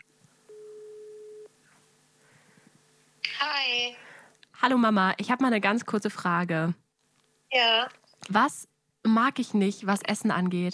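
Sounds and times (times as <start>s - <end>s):
telephone ringback tone: 0.5s - 1.5s
speech: 3.9s - 6.8s, 7.5s - 10.7s.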